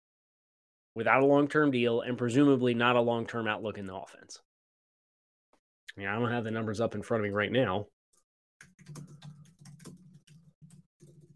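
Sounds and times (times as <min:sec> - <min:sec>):
speech: 0:01.0 - 0:04.5, 0:05.9 - 0:08.0, 0:08.6 - 0:09.2
rapid typing on a computer keyboard: 0:08.6 - 0:11.3.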